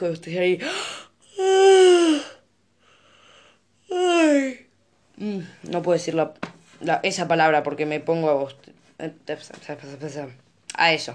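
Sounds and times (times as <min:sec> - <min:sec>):
speech: 0:00.0 - 0:01.0, 0:05.6 - 0:11.1
breathy inhale: 0:00.6 - 0:01.2, 0:02.8 - 0:03.7
person yawning: 0:01.3 - 0:02.4, 0:03.9 - 0:04.6.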